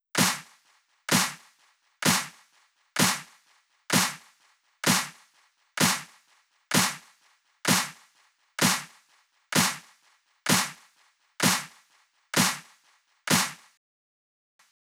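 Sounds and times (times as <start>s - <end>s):
128 BPM snare drum loop: 0.2s - 0.5s, 1.1s - 1.4s, 2.0s - 2.4s, 3.0s - 3.3s, 3.9s - 4.2s, 4.8s - 5.2s, 5.8s - 6.1s, 6.7s - 7.0s, 7.7s - 8.0s, 8.6s - 8.9s, 9.5s - 9.8s, 10.5s - 10.8s, 11.4s - 11.7s, 12.4s - 12.6s, 13.3s - 13.6s.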